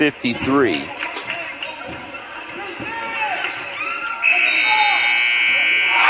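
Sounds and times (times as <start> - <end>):
speech: 0.0 - 1.0
gym crowd murmur: 0.0 - 6.0
sneaker squeaks in a gym: 1.1 - 5.0
basketball game-ending buzzer: 4.2 - 6.0.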